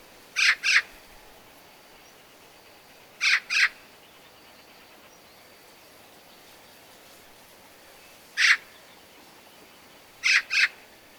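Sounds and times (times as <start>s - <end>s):
Eurasian magpie Pica pica harsh rasping squawks: 0.4s - 0.9s, 3.2s - 3.8s, 8.4s - 8.6s, 10.2s - 10.8s.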